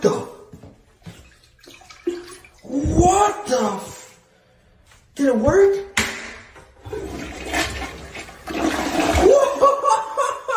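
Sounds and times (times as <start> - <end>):
speech: 0.0 - 0.3, 3.2 - 3.9, 5.2 - 5.8
forceful toilet flush set off by a push button: 1.0 - 3.1, 6.8 - 9.9
laughter: 9.2 - 10.5.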